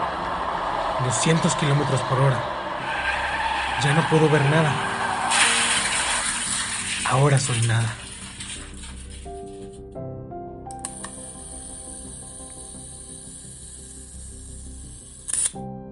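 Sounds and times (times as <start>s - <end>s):
steady humming tonal background: 0.0s - 9.9s, 10.7s - 15.5s
speech: 1.0s - 2.6s, 3.8s - 4.9s, 7.1s - 8.0s
camera flash firing: 10.8s - 12.8s, 15.0s - 15.6s
camera shutter clicks: 15.2s - 15.6s.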